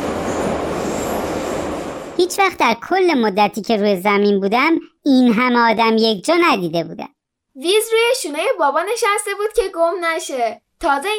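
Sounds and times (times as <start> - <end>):
faint high-pitched metro wheel squeals: 0.0 - 2.2
subway metro train wheels rumbling on rails: 0.0 - 2.8
speech: 2.2 - 11.1.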